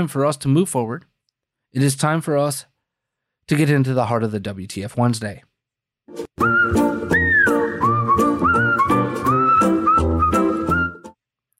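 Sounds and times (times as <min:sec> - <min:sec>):
speech: 0:00.0 - 0:01.1, 0:01.7 - 0:02.7, 0:03.5 - 0:05.5, 0:06.1 - 0:06.8
rhythmic musical backing: 0:06.1 - 0:11.1
person whistling a melody: 0:06.4 - 0:11.1.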